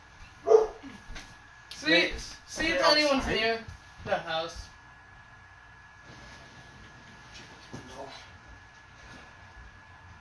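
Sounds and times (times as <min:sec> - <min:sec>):
dog barking outdoors across the street: 0:00.4 - 0:01.0
speech: 0:01.8 - 0:04.7.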